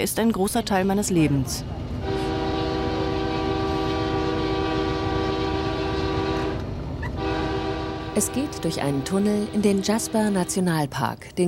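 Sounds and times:
speech: 0:00.0 - 0:01.9, 0:08.2 - 0:11.4
train rumbling along the tracks: 0:00.0 - 0:11.4
train horn blaring in a long sustained chord: 0:02.0 - 0:10.8.

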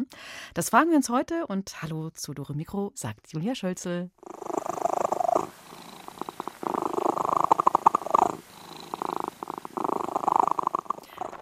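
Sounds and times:
speech: 0:00.0 - 0:04.5
domestic cat purring: 0:04.2 - 0:11.4.

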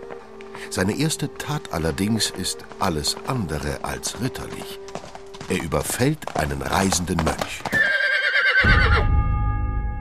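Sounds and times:
speech: 0:00.7 - 0:07.8
horse whinnying: 0:07.5 - 0:09.0.

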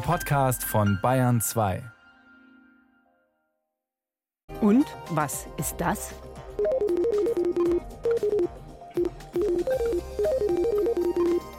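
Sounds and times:
speech: 0:00.1 - 0:02.0, 0:04.6 - 0:06.7
rapid electronic beeps of sonified pig brain signals from an implanted chip: 0:06.6 - 0:11.5.

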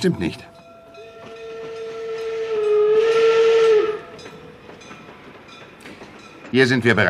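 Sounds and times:
speech: 0:00.0 - 0:00.5, 0:06.5 - 0:07.0
steam train whistle at a railway station: 0:01.0 - 0:04.3.

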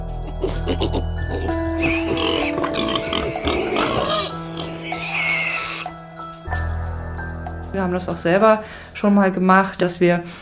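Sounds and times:
domestic pigs grunting and squealing: 0:00.0 - 0:05.9
speech: 0:07.8 - 0:10.4.

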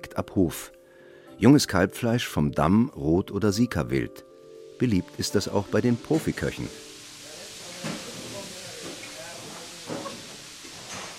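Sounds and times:
speech: 0:00.1 - 0:00.8, 0:01.4 - 0:06.9
steam hissing from cooking pots in a busy kitchen: 0:04.3 - 0:11.1
metal clanks: 0:07.8 - 0:11.1.

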